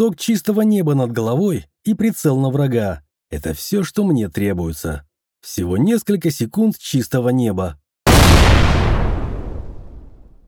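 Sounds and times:
speech: 0.0 - 7.8
grenade explosion: 8.1 - 10.4.

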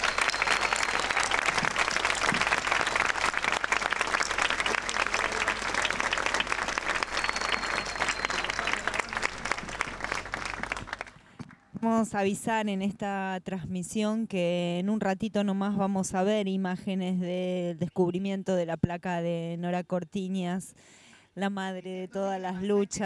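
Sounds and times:
crowd applause at a plaque unveiling: 0.0 - 11.2
speech: 12.0 - 23.0.

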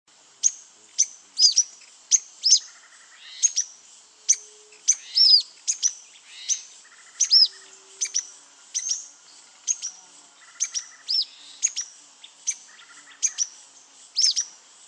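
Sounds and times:
grey-headed spinetail soft buzzy notes: 0.4 - 14.8.

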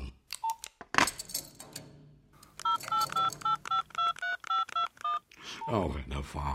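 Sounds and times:
rattling clatter: 1.0 - 3.5
telephone keypad dialing tones: 2.4 - 5.7
speech: 5.6 - 6.5.

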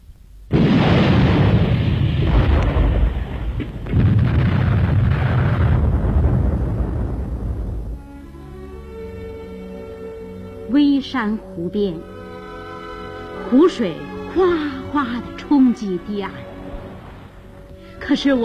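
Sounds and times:
artillery shells exploding on an empty battlefield position: 0.5 - 8.0
speech: 11.0 - 12.1, 13.5 - 16.4, 18.1 - 18.4.

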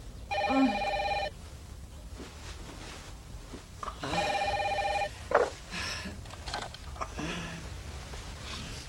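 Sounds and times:
faint low hum: 0.0 - 8.8
telephone bell ringing: 0.3 - 1.3, 4.2 - 5.1.

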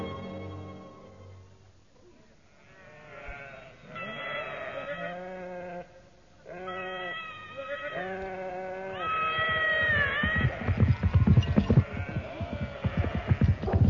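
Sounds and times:
flock of sheep bleating: 2.5 - 10.9, 11.8 - 13.7.

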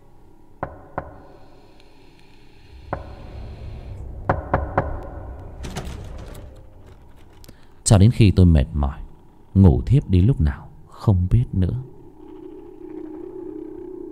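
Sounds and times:
faint steady hum: 0.0 - 14.1
knocking on a door: 2.9 - 6.5
speech: 7.9 - 9.0, 9.6 - 11.9.

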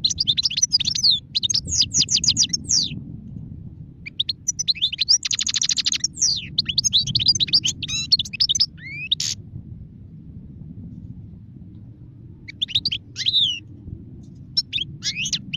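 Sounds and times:
wild European goldfinch twittering: 0.0 - 2.9, 4.1 - 9.4, 12.5 - 13.6, 14.6 - 15.5
steady low hum: 1.7 - 4.6, 8.7 - 15.5.

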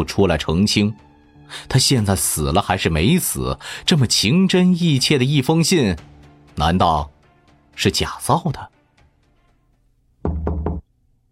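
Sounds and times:
speech: 0.0 - 7.1, 7.8 - 8.8
knocking on a door in the middle of the night: 10.2 - 10.8.

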